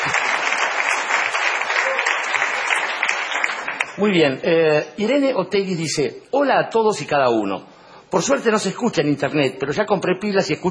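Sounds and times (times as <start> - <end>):
audience applause for a sound technician: 0.0 - 4.0
speech: 4.0 - 10.6.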